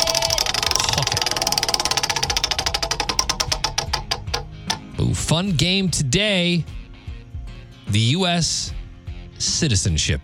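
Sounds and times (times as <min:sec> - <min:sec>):
prize wheel of games spinning with sharp ticking clicks: 0:00.0 - 0:04.9
speech: 0:05.1 - 0:06.8, 0:07.9 - 0:08.8, 0:09.4 - 0:10.2.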